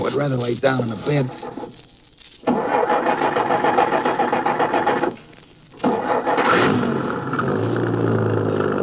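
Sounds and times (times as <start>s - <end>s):
speech: 0.0s - 1.8s
truck engine running while driving: 2.4s - 8.8s.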